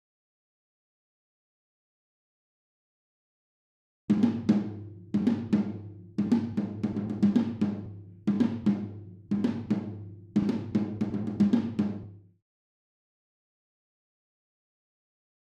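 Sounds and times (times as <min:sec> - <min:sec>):
tom drum in a room: 0:04.1 - 0:12.2.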